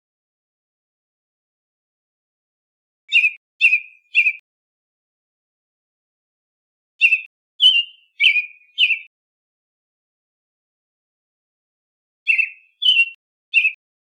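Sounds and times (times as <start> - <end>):
American robin calling: 3.1 - 4.4, 7.0 - 9.1, 12.3 - 13.8.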